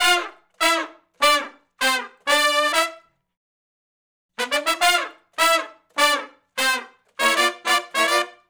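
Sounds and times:
horn section playing a funk riff in G in unison and harmony: 0:00.0 - 0:03.0, 0:04.4 - 0:08.4.

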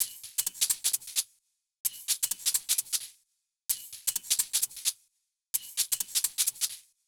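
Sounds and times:
shaker loop: 0:00.0 - 0:01.3, 0:01.9 - 0:03.1, 0:03.7 - 0:05.0, 0:05.6 - 0:06.9.

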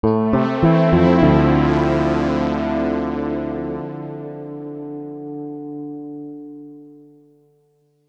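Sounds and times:
drum and bass keyboard pad riff: 0:00.0 - 0:05.2.

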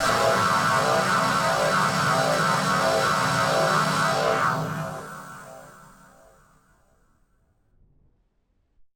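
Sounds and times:
battered malfunctioning synthesizer: 0:00.0 - 0:06.0.

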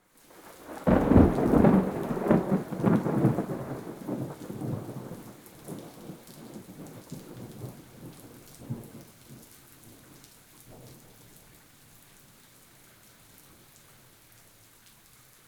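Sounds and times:
rain: 0:00.0 - 0:15.4
very close thunder: 0:00.5 - 0:09.1.

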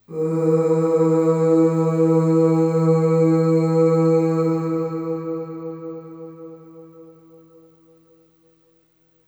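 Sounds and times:
long ooh vocal on E2 with long reverb: 0:00.0 - 0:07.1.

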